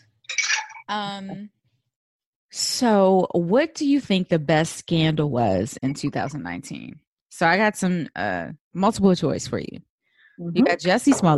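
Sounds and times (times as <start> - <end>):
ice clinking in a glass: 0.3 - 0.8
speech: 0.9 - 1.6, 2.5 - 11.3.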